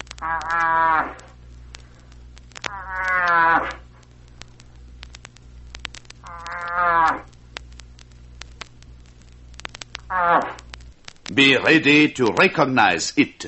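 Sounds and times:
low steady hum: 0.0 - 13.4
bull moose calling for a cow: 0.1 - 1.4, 2.7 - 3.9, 6.2 - 7.3, 10.0 - 10.7
speech: 11.4 - 13.4.

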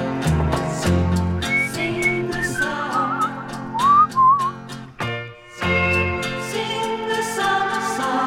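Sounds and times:
steady band with bass and rhythmic percussion: 0.0 - 8.2
melodic whistled tune: 1.2 - 4.9.

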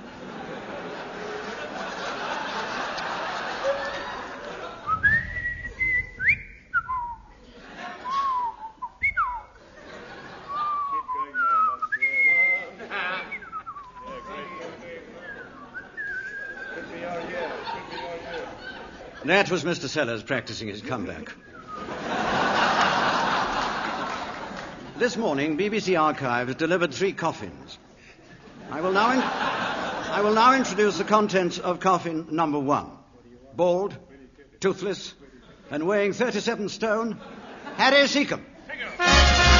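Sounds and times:
laughter: 0.0 - 6.4, 7.3 - 11.8, 12.4 - 19.6, 21.7 - 25.0, 28.2 - 31.4, 37.1 - 37.9
faint hiss of noise: 0.0 - 39.5
man whistling a wandering tune: 4.9 - 7.3, 8.1 - 9.5, 10.6 - 14.2, 15.2 - 16.7, 21.4 - 21.9
speech: 19.3 - 21.5, 25.0 - 27.8, 28.7 - 33.0, 33.6 - 34.0, 34.6 - 38.5.

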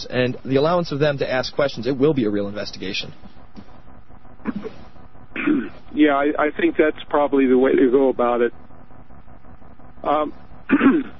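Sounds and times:
speech: 0.0 - 3.4, 5.4 - 8.6, 10.0 - 11.1
throat clearing from someone with a frog in the throat and allergies: 4.4 - 4.8, 5.4 - 5.8, 10.7 - 11.1.

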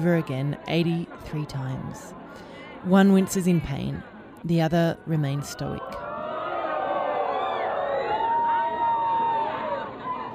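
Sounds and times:
speech: 0.0 - 6.0
crowd of thousands shouting insults and cheering at a public caning: 5.6 - 10.3.

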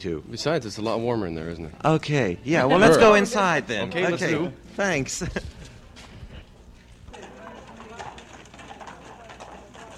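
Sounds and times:
speech: 0.0 - 5.6
faint murmur of voices: 1.9 - 9.9
horse-drawn carriage hooves clip-clopping: 5.9 - 9.9.

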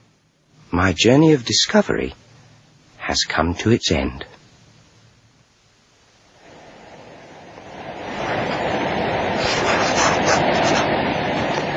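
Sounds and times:
speech: 0.7 - 2.2, 3.1 - 4.3
steady breeze blowing: 6.3 - 11.7.

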